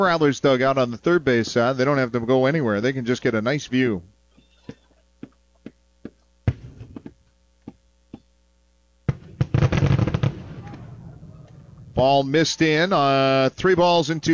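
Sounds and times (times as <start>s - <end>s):
speech: 0.0s - 4.1s, 12.0s - 14.3s
steady low hum: 0.0s - 14.3s
fireworks display over a river bangs and crackles: 6.4s - 7.2s, 9.0s - 12.2s, 13.6s - 14.3s.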